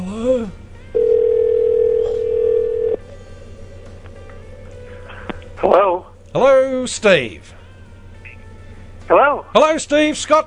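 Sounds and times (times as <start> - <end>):
telephone ringback tone through a phone connection: 1.0 - 3.0
speech: 6.3 - 7.6, 9.1 - 10.4.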